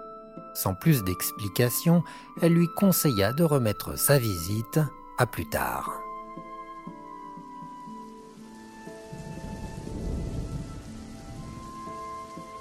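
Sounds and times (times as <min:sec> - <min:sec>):
speech: 0:00.6 - 0:06.0
heavy rain from a violent thunderstorm: 0:07.3 - 0:12.5
deep roll of thunder: 0:09.0 - 0:12.5.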